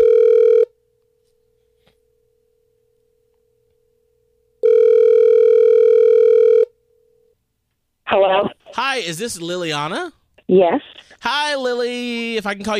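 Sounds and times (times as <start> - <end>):
telephone ringback tone as a call is placed: 0.0 - 0.7, 4.6 - 6.7
speech: 8.1 - 12.7.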